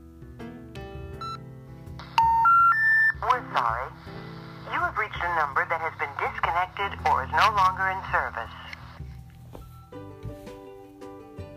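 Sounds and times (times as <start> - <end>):
cell phone keypad beeps: 1.2 - 1.4, 2.2 - 3.2
speech: 3.6 - 8.6.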